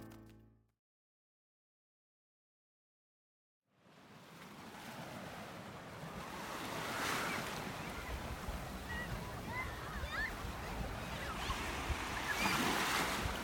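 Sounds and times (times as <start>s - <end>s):
Red Sea surf washing in on the beach at Dahab in Sinai Egypt: 3.8s - 13.4s.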